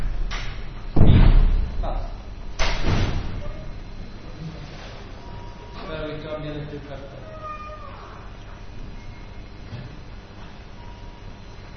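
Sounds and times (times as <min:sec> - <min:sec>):
door closing with heavy dull thuds: 0:00.9 - 0:01.8, 0:02.6 - 0:03.5
speech: 0:06.4 - 0:07.4.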